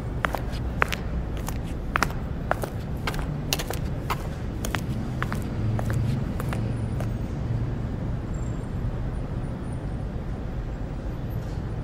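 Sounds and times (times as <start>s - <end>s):
footsteps walking toward a building: 0.0s - 7.2s
low rumble of street traffic: 0.0s - 11.8s.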